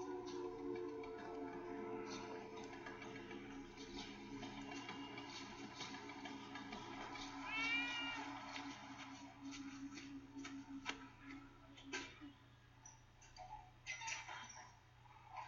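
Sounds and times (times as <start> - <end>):
sustained tonal background: 0.0 - 15.4
cat in a giant birdcage meowing: 7.4 - 8.3.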